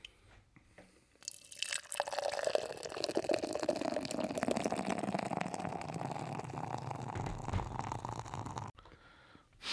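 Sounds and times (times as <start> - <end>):
beer pouring into a glass: 1.2 - 8.7.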